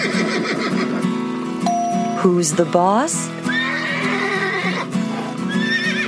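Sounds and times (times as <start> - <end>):
palomino horses fighting and neighing: 0.0 - 1.2, 3.4 - 6.0
speech: 2.2 - 3.4.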